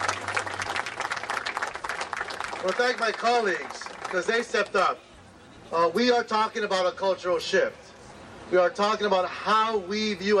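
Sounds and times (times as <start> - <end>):
audience applause at a public gathering in Los Angeles: 0.0 - 4.2
speech: 2.6 - 5.1, 5.7 - 7.8, 8.5 - 10.3.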